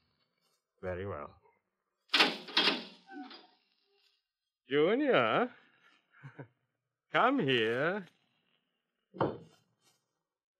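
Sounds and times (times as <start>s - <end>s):
speech: 0.8s - 1.4s, 4.7s - 5.6s, 6.2s - 8.2s, 9.2s - 9.5s
door hinges creaking: 2.1s - 3.6s
laughter: 6.2s - 6.5s.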